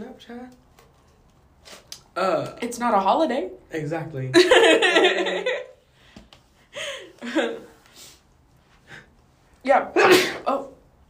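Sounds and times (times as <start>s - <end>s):
speech: 0.0s - 0.7s, 2.2s - 5.7s, 7.2s - 7.7s, 9.6s - 10.8s
person sneezing: 10.0s - 10.6s.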